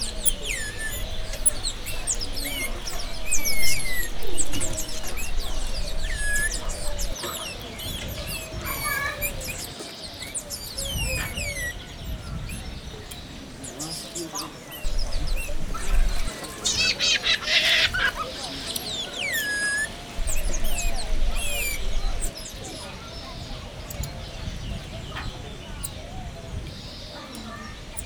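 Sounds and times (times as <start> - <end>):
thin high calls of a marmoset or cotton-top tamarin in a zoo: 0.0 - 11.8, 13.7 - 22.4
wind: 0.0 - 28.0.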